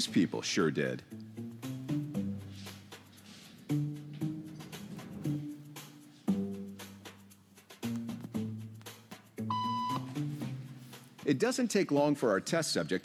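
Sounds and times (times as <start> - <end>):
speech: 0.0 - 1.2, 11.3 - 13.0
steady music: 0.0 - 13.0
sharp electronic beep: 9.5 - 10.0.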